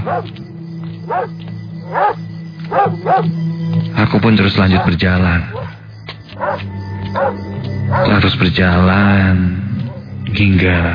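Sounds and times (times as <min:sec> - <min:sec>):
dog barking inside a house: 0:00.0 - 0:00.3, 0:01.1 - 0:03.3, 0:04.7 - 0:05.7, 0:06.4 - 0:08.2, 0:09.8 - 0:10.0
speech: 0:00.1 - 0:05.6, 0:08.0 - 0:09.6, 0:10.3 - 0:10.9.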